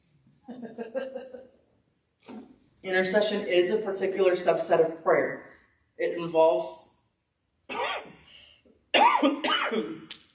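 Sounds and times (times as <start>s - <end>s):
laughter: 0.5s - 1.5s
speech: 2.8s - 5.4s, 6.1s - 6.8s
harsh throaty coughing from a speaker during a talk on prayer: 7.7s - 8.2s, 9.0s - 10.1s.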